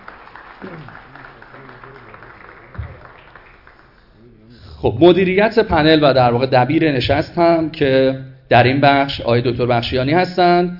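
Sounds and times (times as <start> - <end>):
audience applauding: 0.0 - 4.2
speech: 0.6 - 1.1, 4.8 - 10.7.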